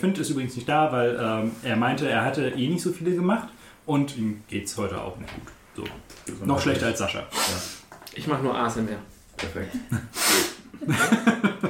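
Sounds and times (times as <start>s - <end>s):
speech: 0.0s - 11.4s
sniffling runny nose: 7.3s - 7.9s, 10.1s - 10.7s
laughter: 10.7s - 11.6s.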